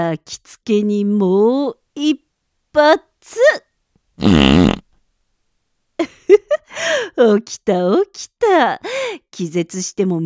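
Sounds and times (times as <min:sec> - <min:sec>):
speech: 0:00.0 - 0:02.2, 0:02.8 - 0:03.6, 0:04.2 - 0:04.8, 0:06.0 - 0:10.2
loud buzzy fart: 0:04.2 - 0:04.9.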